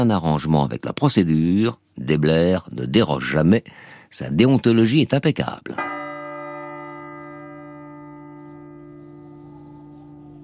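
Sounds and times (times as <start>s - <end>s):
speech: 0.0s - 6.0s
large town hall tower clock bell striking: 5.8s - 10.4s.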